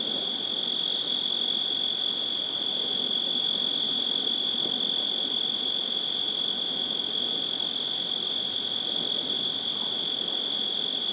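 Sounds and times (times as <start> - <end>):
insects droning in Joshua Tree National Park: 0.0 - 11.1.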